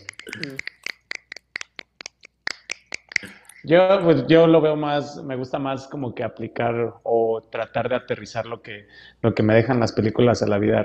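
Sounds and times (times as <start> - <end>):
person laughing or murmuring: 0.0 - 0.8
finger snapping in place of applause: 0.0 - 3.6
speech: 0.4 - 0.7, 3.7 - 10.8.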